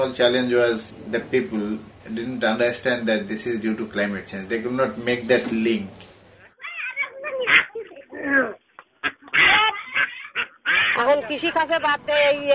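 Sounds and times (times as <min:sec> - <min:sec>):
speech: 0:00.0 - 0:06.1, 0:11.2 - 0:12.5
flock of farm-reared ducks quacking on waterlogged former farmland: 0:07.3 - 0:12.0.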